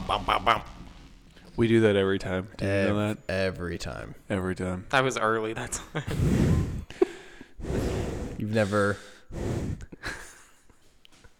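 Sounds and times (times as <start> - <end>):
speech: 0.1 - 0.7, 1.6 - 6.7, 8.4 - 10.2
heavy breathing into a microphone: 6.0 - 10.5
sharp gasping intakes and huffs: 6.1 - 10.0.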